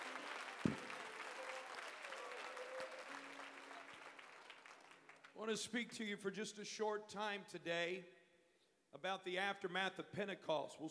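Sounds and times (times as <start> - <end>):
audience applause: 0.0 - 5.3
speech: 5.4 - 8.2, 8.9 - 10.8.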